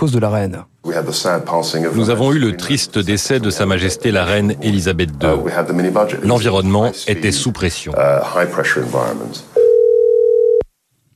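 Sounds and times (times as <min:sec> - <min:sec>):
speech: 0:00.0 - 0:09.6
steady electronic telephone tone: 0:09.6 - 0:10.7.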